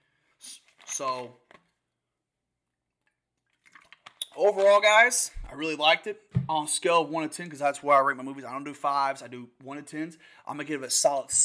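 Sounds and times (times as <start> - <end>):
speech: 1.0 - 1.4, 4.4 - 11.4
quiet wet gulps of water: 3.0 - 4.4
soft slurp of water: 3.0 - 4.4.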